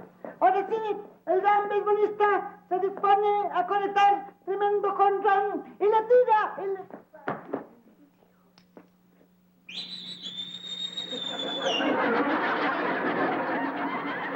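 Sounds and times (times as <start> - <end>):
speech: 0.6 - 7.0
person whistling: 9.7 - 11.8
laughter: 11.0 - 14.3.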